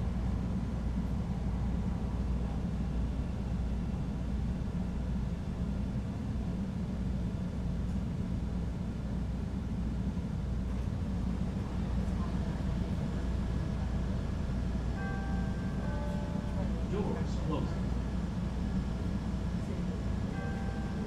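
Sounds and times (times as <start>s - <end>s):
rapid transit train rumbling heard from inside the car: 0.0s - 21.0s
faint high whining tones: 14.9s - 18.0s, 20.2s - 21.0s.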